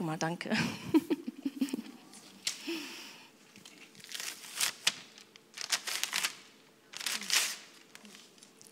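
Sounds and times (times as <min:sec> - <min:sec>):
speech: 0:00.1 - 0:01.1
laughter: 0:00.6 - 0:02.0
two glued paper sheets being pulled apart: 0:03.9 - 0:08.7.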